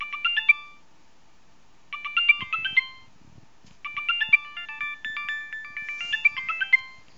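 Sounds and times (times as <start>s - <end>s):
Nokia 3510i phone ringtone: 0.0s - 0.8s, 1.9s - 3.1s, 3.8s - 7.1s.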